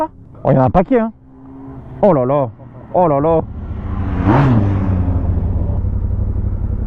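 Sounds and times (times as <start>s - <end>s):
speech: 0.0s - 1.2s, 2.0s - 3.6s, 4.3s - 4.8s
steady low rumble: 0.0s - 6.8s
race lead car passing by: 2.8s - 5.8s.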